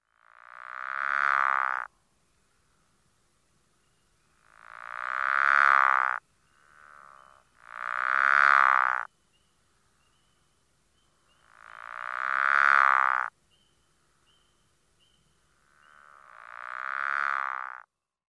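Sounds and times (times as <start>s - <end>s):
pickerel frog snoring call: 0.1s - 1.9s, 4.4s - 9.1s, 11.3s - 13.3s, 15.6s - 17.9s.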